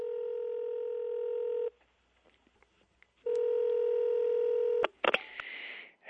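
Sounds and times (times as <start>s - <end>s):
long steady electronic telephone tones of an incoming call: 0.0s - 1.7s, 3.3s - 4.9s.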